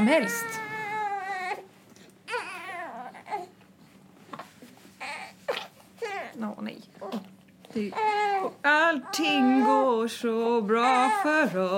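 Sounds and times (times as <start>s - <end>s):
speech: 0.0s - 0.7s, 6.4s - 11.7s
baby crying and babbling: 0.0s - 1.7s, 2.3s - 3.6s, 5.0s - 6.4s, 7.0s - 10.0s, 10.8s - 11.6s.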